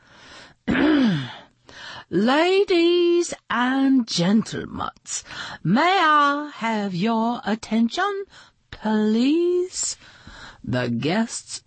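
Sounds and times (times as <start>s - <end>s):
woman clearing her throat in a dining room at breakfast: 0.7s - 1.4s
speech: 2.1s - 11.6s.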